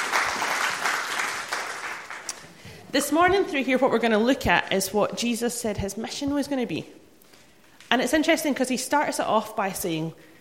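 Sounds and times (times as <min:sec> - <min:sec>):
audience applause: 0:00.0 - 0:02.5
speech: 0:02.9 - 0:07.0, 0:07.9 - 0:10.3.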